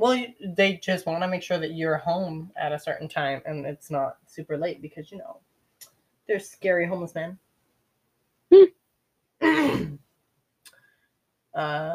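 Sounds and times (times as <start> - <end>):
speech: 0.0 - 5.5, 6.3 - 7.4, 8.5 - 8.8, 9.4 - 10.0, 11.6 - 11.9
person clearing throat from phlegm: 9.4 - 10.0.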